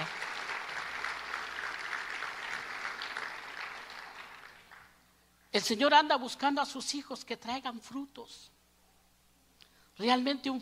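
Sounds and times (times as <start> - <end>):
crowd applause: 0.0 - 5.0
speech: 5.6 - 8.6, 10.0 - 10.6.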